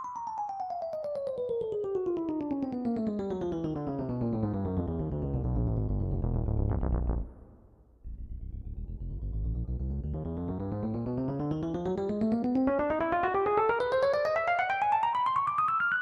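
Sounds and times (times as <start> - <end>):
electric piano: 0.2 - 7.4, 8.6 - 15.8.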